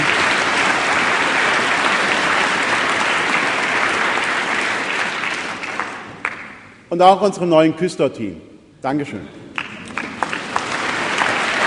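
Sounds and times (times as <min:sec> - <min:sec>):
sizable audience applauding in a reverberant church: 0:00.0 - 0:06.6, 0:09.6 - 0:11.6
speech: 0:07.0 - 0:09.4.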